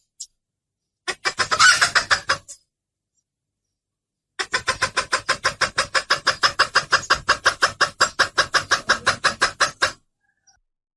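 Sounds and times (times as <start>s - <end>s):
bird clucking calls: 1.0s - 2.6s, 4.4s - 10.6s.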